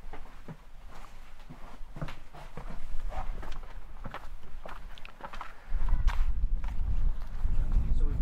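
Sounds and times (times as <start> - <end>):
footsteps walking outdoors over stepping stones: 0.0 - 7.9
low rumble of wind: 2.6 - 8.1.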